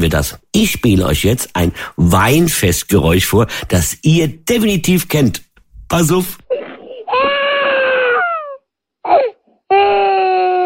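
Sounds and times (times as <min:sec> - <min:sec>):
speech: 0:00.0 - 0:06.6
person weeping and sobbing: 0:06.5 - 0:10.6.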